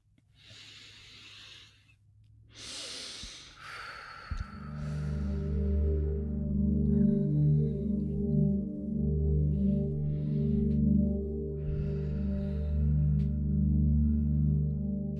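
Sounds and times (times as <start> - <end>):
slow deep breaths drawn in and let out: 0.2 - 15.1
steady low humming tone: 3.2 - 15.1.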